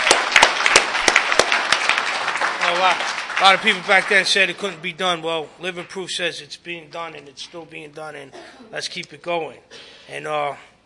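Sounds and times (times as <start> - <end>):
audience applauding: 0.0 - 4.7
speech: 2.8 - 10.7.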